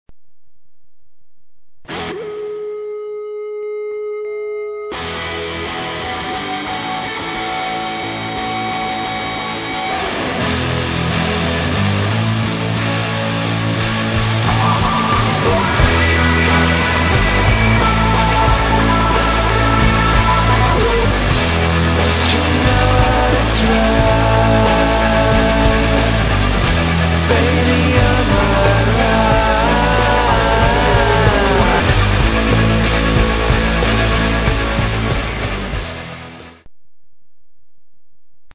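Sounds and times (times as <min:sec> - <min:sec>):
fuzz pedal distorted guitar: 0:00.2 - 0:36.7.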